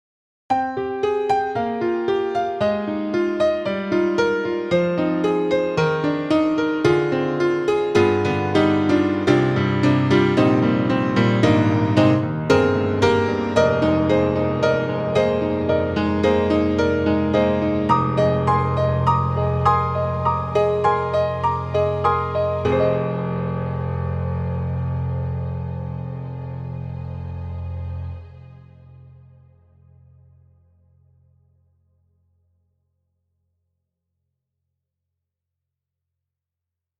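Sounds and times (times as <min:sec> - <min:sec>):
piano on Steinberg HALion 6: 0:00.5 - 0:31.9
string ensemble on Steinberg HALion 6: 0:06.9 - 0:29.6.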